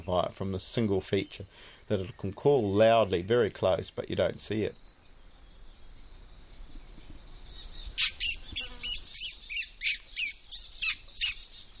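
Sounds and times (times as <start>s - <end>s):
speech: 0.1s - 4.8s
person making squeaky pishing noises to attract small birds: 8.0s - 11.4s.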